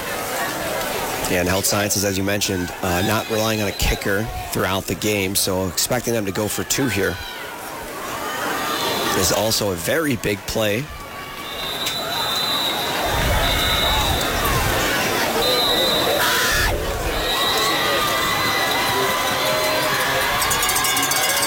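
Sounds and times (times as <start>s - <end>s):
stadium crowd cheering at football game: 0.0s - 21.4s
speech: 1.3s - 7.4s, 9.2s - 11.0s
bell-like clang: 19.7s - 21.4s.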